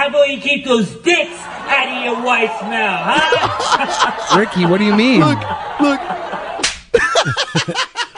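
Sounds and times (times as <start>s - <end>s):
speech: 0.2s - 6.2s, 7.3s - 8.0s
laughter: 1.2s - 8.1s
face slap: 6.6s - 6.9s
loud smacking bursts: 6.6s - 6.9s.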